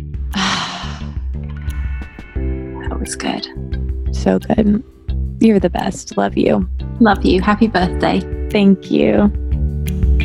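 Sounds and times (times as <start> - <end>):
deep breath inhaled and let out: 0.4 - 1.3
steady background of sustained tones: 1.4 - 6.5
speech: 3.0 - 9.4.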